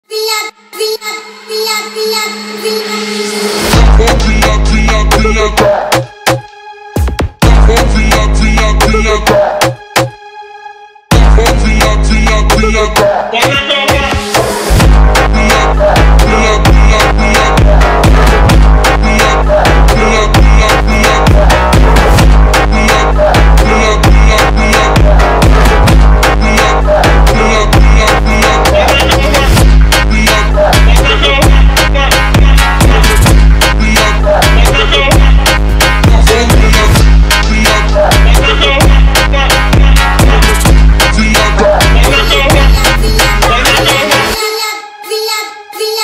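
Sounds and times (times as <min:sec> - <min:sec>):
Brazilian funk montagem music: 0:00.2 - 0:10.2, 0:11.1 - 0:46.0.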